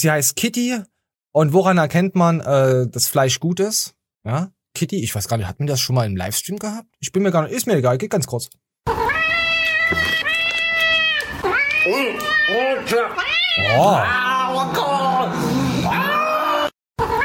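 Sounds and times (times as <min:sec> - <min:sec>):
speech: 0:00.0 - 0:09.0, 0:09.9 - 0:10.2, 0:11.8 - 0:15.7
cat meowing with long wavering yowls: 0:08.9 - 0:14.4, 0:15.9 - 0:17.2.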